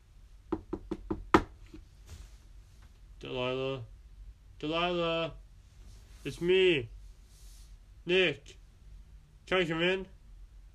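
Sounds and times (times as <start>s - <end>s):
knocking on a door: 0.5s - 1.6s
speech: 3.2s - 3.9s, 4.6s - 5.4s, 6.2s - 7.0s, 8.0s - 8.6s, 9.5s - 10.2s.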